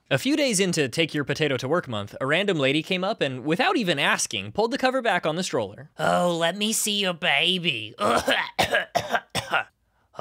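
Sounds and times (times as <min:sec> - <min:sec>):
speech: 0:00.1 - 0:09.7
harsh raspy coughs: 0:08.0 - 0:09.8.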